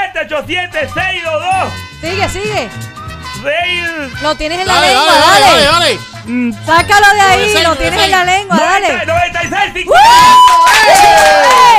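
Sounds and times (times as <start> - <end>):
speech: 0.3 - 11.7
crowd cheering and whooping: 9.9 - 11.7
clapping: 10.4 - 11.7.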